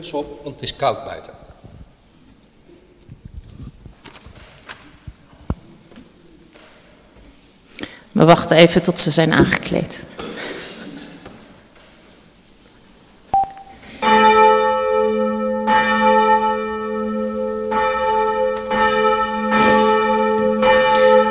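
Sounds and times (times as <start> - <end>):
speech: 0.0 - 1.4, 8.2 - 10.2
church bells ringing: 13.9 - 21.3.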